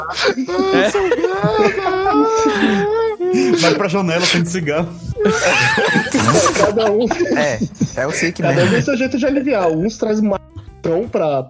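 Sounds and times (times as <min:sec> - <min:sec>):
voice mimicking someone starting to cry: 0:00.0 - 0:04.4, 0:05.0 - 0:07.8
speech: 0:00.0 - 0:11.4
laughter: 0:00.2 - 0:09.2.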